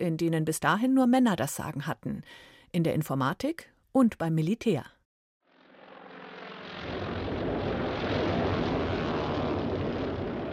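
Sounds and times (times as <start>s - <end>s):
speech: 0.0s - 5.0s
Japanese propeller warplanes roaring overhead bombing warships at Pearl Harbor Hawaii: 5.5s - 10.5s.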